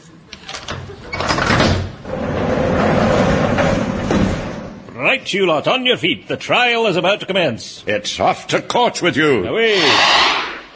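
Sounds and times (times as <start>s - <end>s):
door sliding open with a rattle and scrape: 0.5s - 4.9s
speech: 5.1s - 10.4s.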